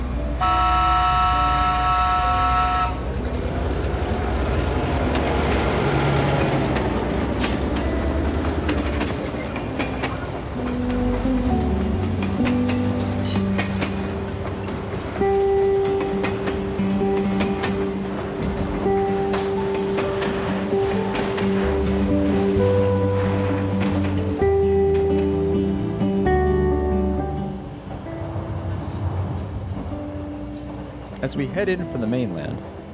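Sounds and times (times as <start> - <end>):
train rumbling along the rails: 0.0 - 32.9
tonal horn-like hum: 0.4 - 3.1
speech: 31.4 - 32.7.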